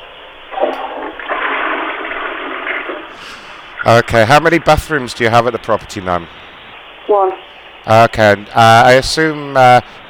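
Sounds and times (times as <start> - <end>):
toilet flushing: 0.6 - 4.4
shower running: 0.6 - 4.9
speech: 3.8 - 6.4, 7.1 - 10.0.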